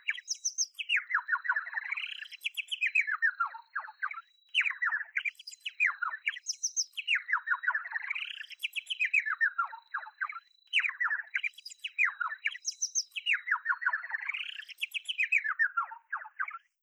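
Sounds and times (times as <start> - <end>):
bird singing warbled phrases: 0.0 - 16.8.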